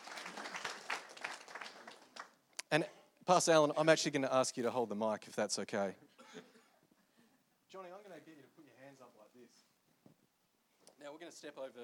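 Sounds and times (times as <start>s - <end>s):
audience applause: 0.0s - 2.4s
speech: 2.7s - 6.5s, 11.0s - 11.8s.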